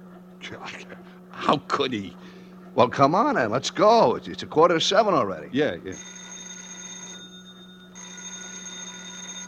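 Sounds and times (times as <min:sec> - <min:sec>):
speech: 0:00.5 - 0:06.2
telephone bell ringing: 0:06.0 - 0:09.4.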